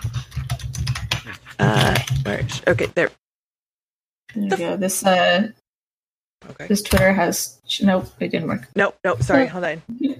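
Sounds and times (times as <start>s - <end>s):
typing on a computer keyboard: 0.0s - 2.6s
speech: 1.6s - 3.2s, 4.3s - 5.6s, 6.4s - 10.1s.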